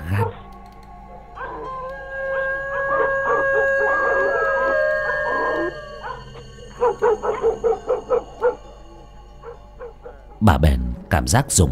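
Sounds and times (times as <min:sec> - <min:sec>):
pack of village dogs howling: 0:00.0 - 0:10.4
village dogs barking and yipping: 0:01.3 - 0:10.4
speech: 0:10.6 - 0:11.7.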